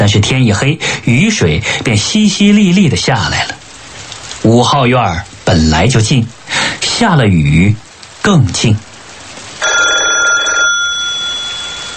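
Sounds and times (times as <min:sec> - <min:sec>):
speech: 0:00.0 - 0:03.6, 0:04.4 - 0:08.9
telephone bell ringing: 0:09.6 - 0:11.9.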